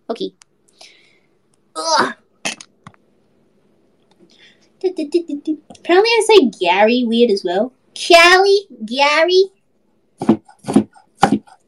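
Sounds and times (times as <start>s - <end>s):
speech: 0.1s - 0.9s, 4.9s - 9.6s
dull knife chopping and mincing garlic: 10.2s - 11.6s.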